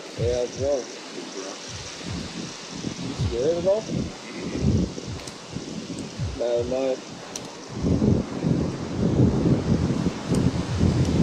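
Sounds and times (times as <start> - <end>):
gusty wind rumbling: 0.0 - 11.2
speech: 0.2 - 2.2, 3.1 - 4.8, 6.4 - 7.1.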